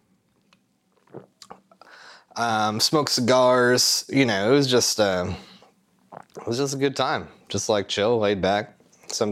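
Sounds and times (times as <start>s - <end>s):
person sipping beer: 0.4s - 1.9s, 5.7s - 6.5s
gulp: 1.0s - 1.8s, 6.1s - 6.5s
breathy exhale: 1.8s - 2.3s
speech: 2.4s - 5.5s, 6.5s - 9.2s.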